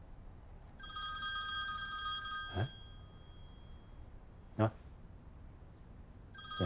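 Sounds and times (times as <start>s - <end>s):
electronic telephone ring tone on an outgoing call: 0.8s - 4.5s, 6.4s - 6.6s.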